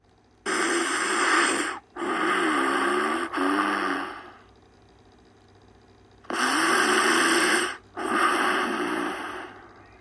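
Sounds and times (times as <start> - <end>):
loud rasping snores with spluttering wheezy edge: 0.5 - 4.4, 6.3 - 9.7.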